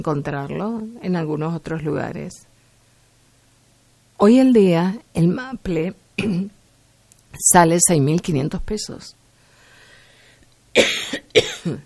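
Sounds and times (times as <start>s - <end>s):
speech: 0.0s - 2.5s, 4.2s - 6.6s, 7.3s - 9.2s, 10.8s - 11.0s, 11.6s - 11.8s
person coughing: 6.2s - 6.5s, 10.8s - 11.8s.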